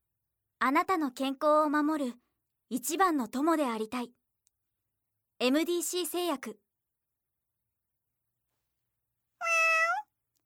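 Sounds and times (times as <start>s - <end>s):
speech: 0.6s - 4.2s, 5.4s - 6.6s
kitten meowing: 9.4s - 10.1s.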